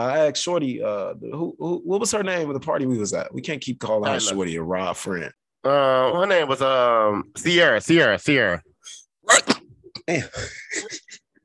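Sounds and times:
speech: 0.0s - 9.0s, 10.1s - 10.8s
person sneezing: 9.2s - 9.8s.

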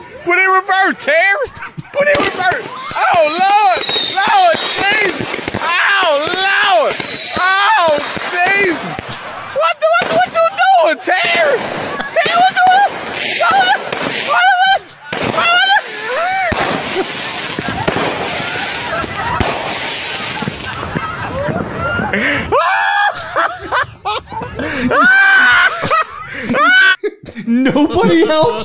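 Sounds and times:
people screaming and shrieking: 0.0s - 27.0s, 27.7s - 28.6s
laughter: 0.0s - 28.6s
speech: 0.2s - 7.5s, 27.6s - 28.6s
malfunctioning fireworks crackling and banging: 1.5s - 22.3s, 27.8s - 28.6s.

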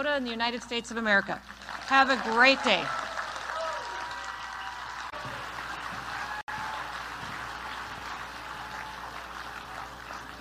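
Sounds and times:
speech: 0.0s - 3.0s
large record-setting convention crowd applauding: 1.4s - 10.3s
faint cheers and whistles from crowd: 2.5s - 10.3s.

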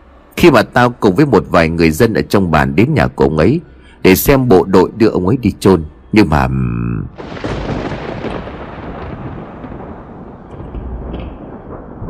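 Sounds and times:
speech: 0.4s - 7.5s
howling wind beating hard against the door of a house: 7.2s - 12.0s
sudden thunderclap with lightning: 7.2s - 12.0s.

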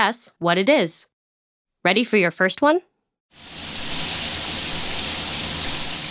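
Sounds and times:
speech: 0.0s - 1.1s, 1.8s - 3.6s
hot shower running: 3.4s - 6.0s.

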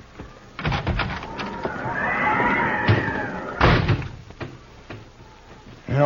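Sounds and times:
door-like bang: 0.6s - 4.6s
horse neighing with a rising-and-falling whinny: 1.3s - 3.8s.

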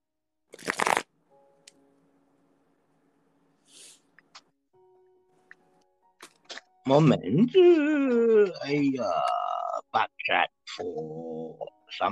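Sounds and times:
playing cards being shuffled with a riffling burst: 0.5s - 1.1s
speech: 6.9s - 9.4s, 10.0s - 12.0s.

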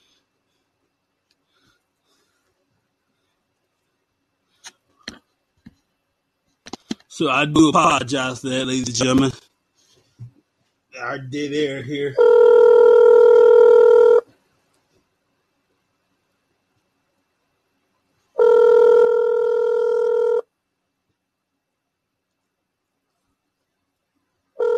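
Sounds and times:
speech: 7.1s - 9.4s, 11.0s - 12.4s
telephone line ringing during call-back: 12.2s - 14.2s, 18.4s - 20.4s, 24.6s - 24.7s.

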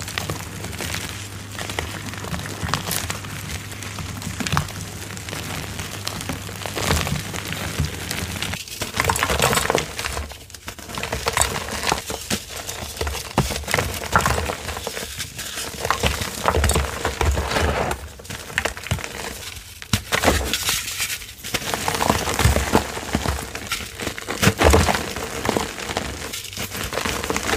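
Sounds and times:
faint low hum: 0.0s - 10.4s
gym chalk crumbling under busy handling: 0.0s - 27.5s.

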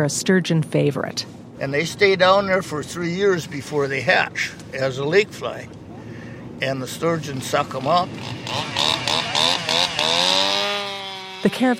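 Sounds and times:
speech: 0.0s - 5.8s, 6.6s - 8.9s, 11.4s - 11.7s
chainsaw cutting a rectangular hole in lake ice: 7.7s - 11.7s.

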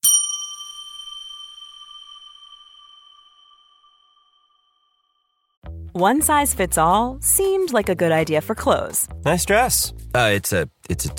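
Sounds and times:
single bell strike with bright metallic tone: 0.0s - 4.4s
speech: 6.0s - 11.1s.

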